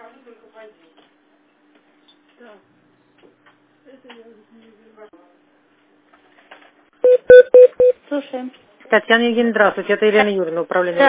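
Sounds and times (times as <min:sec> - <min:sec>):
speech: 0:00.6 - 0:01.2, 0:02.4 - 0:05.4, 0:08.1 - 0:11.0
telephone keypad tones dialing a number to transfer a call: 0:07.1 - 0:07.9.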